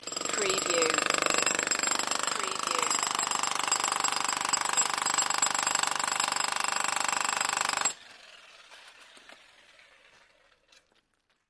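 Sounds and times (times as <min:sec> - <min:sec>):
pneumatic hammer: 0:00.0 - 0:08.0.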